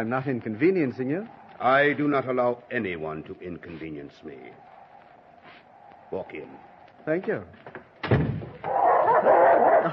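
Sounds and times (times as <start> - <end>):
speech: 0.0 - 4.7, 6.1 - 7.8
dogs barking loudly indoors on a snowy day: 8.6 - 9.9.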